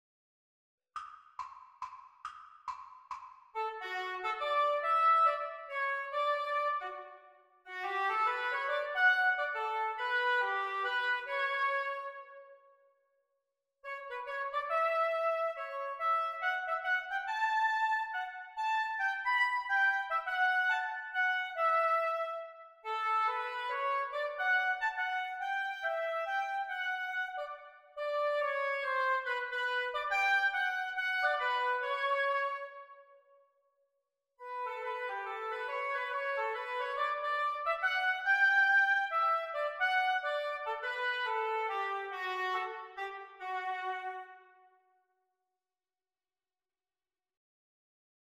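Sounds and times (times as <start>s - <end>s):
oboe duet: 3.6s - 7.1s, 7.7s - 12.4s, 13.9s - 33.0s, 34.5s - 44.4s.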